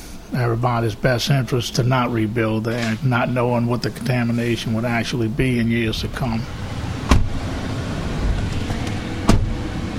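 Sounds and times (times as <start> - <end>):
pickup truck engine rumble while driving: 0.0 - 9.9
road noise: 0.0 - 9.9
speech: 0.3 - 6.6
sharp knocks or bumps: 7.1 - 7.4, 9.3 - 9.5.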